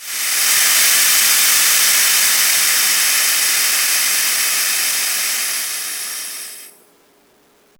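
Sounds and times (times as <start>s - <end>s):
air leaking: 0.0s - 6.8s.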